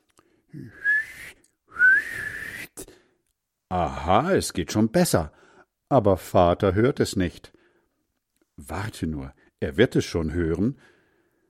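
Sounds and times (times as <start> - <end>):
speech: 0.5 - 0.8, 3.7 - 7.6, 8.6 - 10.9
whistling with pursed lips: 0.6 - 2.9.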